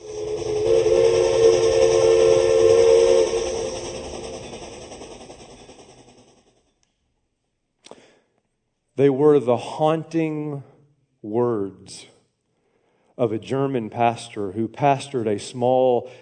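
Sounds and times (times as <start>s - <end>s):
steam train whistle blast: 0.0s - 5.0s
speech: 9.0s - 12.1s, 13.2s - 16.2s.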